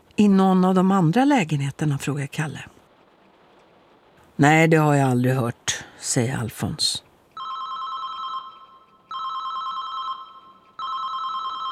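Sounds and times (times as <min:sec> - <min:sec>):
speech: 0:00.2 - 0:02.8, 0:04.4 - 0:07.0
mobile phone ringing in a stairwell: 0:07.4 - 0:11.7.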